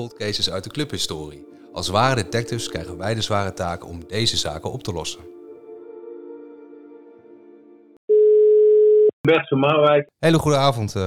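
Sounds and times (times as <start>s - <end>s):
speech: 0.0s - 5.4s, 9.2s - 11.0s
layered hum-like telephone dial tone while placing a call: 8.1s - 9.1s.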